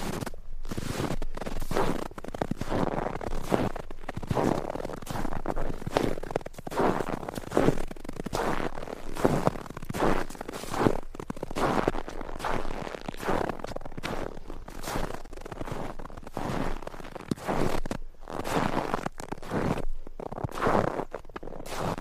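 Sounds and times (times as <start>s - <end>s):
footsteps crunching through snow at walking pace: 0.0s - 22.0s.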